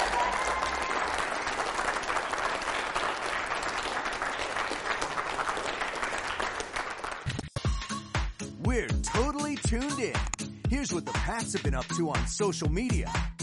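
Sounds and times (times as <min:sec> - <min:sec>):
audience applauding and cheering: 0:00.0 - 0:07.4
speech: 0:08.8 - 0:13.3.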